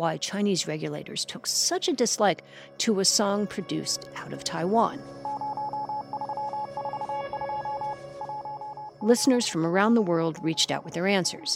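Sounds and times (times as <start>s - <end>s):
speech: 0.0s - 5.2s, 9.0s - 11.5s
Morse code beeps: 5.2s - 9.6s, 10.3s - 11.0s.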